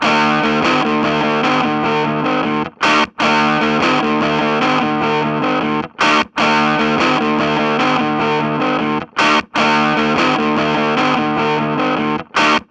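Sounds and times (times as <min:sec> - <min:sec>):
electric guitar riff: 0:00.0 - 0:12.6.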